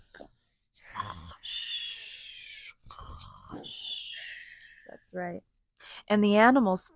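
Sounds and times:
several voices imitating snoring: 0.9s - 4.2s
speech: 3.5s - 4.0s, 5.1s - 5.5s, 6.1s - 6.9s.

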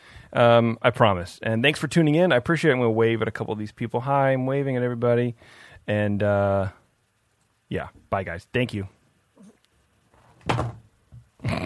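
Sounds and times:
speech: 0.3s - 6.8s, 7.7s - 9.0s, 10.5s - 10.8s, 11.4s - 11.6s
phone dropped with a heavy thud while hanging up: 10.4s - 10.9s.

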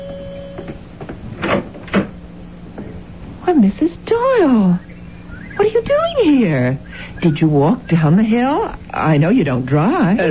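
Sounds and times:
faint steady hum in the room: 0.0s - 10.3s
front door rattling as it is opened: 1.2s - 2.2s
speech: 3.6s - 4.9s, 5.6s - 10.3s.

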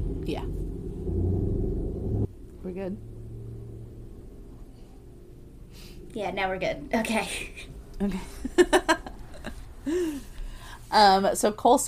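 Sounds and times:
heavy truck rumbling outside: 0.0s - 7.0s
speech: 0.3s - 1.2s, 2.8s - 3.2s, 6.1s - 9.0s, 9.8s - 10.3s, 10.9s - 11.8s
laughter: 8.0s - 10.3s.

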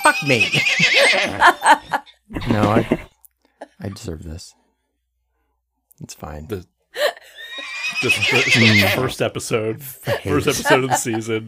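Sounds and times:
horse whinnying: 0.0s - 1.6s, 2.3s - 3.1s, 7.4s - 9.1s
laughter: 0.0s - 3.0s, 7.0s - 9.1s, 9.9s - 11.4s
speech: 0.1s - 3.1s, 3.8s - 4.6s, 6.0s - 6.7s, 8.0s - 11.4s
horse snorting: 2.3s - 3.1s, 7.6s - 9.0s.

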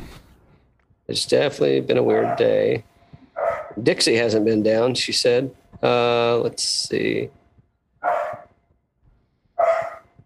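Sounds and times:
speech: 1.1s - 2.9s, 3.8s - 7.4s
dog barking: 2.1s - 2.7s, 3.4s - 3.8s, 8.0s - 8.5s, 9.6s - 10.1s.

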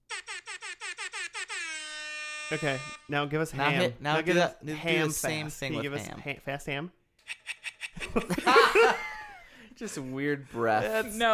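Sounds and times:
rap-style air horn blasts: 0.1s - 3.2s
speech: 2.5s - 7.4s, 8.1s - 9.1s, 9.8s - 11.3s
laughter: 7.9s - 9.5s.

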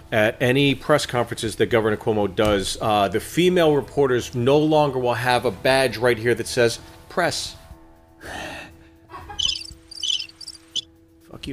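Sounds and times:
speech: 0.1s - 7.6s
crickets chirping in high-pitched bursts sound effect: 9.4s - 10.8s.

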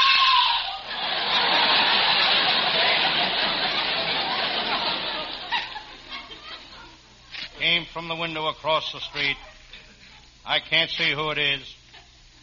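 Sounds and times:
woman screaming: 0.0s - 0.9s
laughter: 0.7s - 7.2s
speech: 8.0s - 9.5s, 10.4s - 11.8s.

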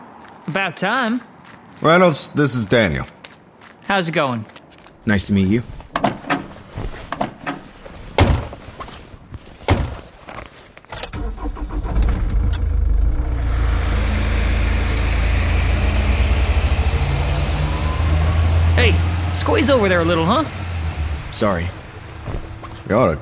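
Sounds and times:
speech: 0.5s - 3.2s, 3.9s - 5.8s, 19.4s - 20.6s, 21.4s - 23.2s
sharp clunks: 5.9s - 8.6s, 9.6s - 10.1s
truck engine starting: 11.0s - 23.2s.

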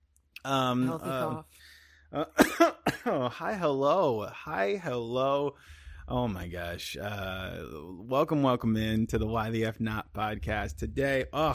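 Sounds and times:
person vocalizing: 0.4s - 1.4s
speech: 0.4s - 11.5s
harsh wheezy coughing after vaping: 2.2s - 3.3s.

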